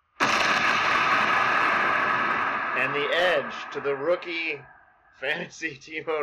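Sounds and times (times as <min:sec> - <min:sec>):
explosion sound effect with dense roar: 0:00.2 - 0:04.7
speech: 0:02.8 - 0:06.2.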